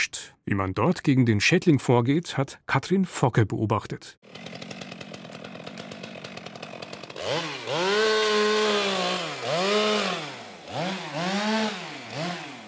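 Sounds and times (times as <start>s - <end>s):
speech: 0.0s - 4.6s
harvester saw cutting down a maple tree in Miesbach, Germany: 4.2s - 12.6s.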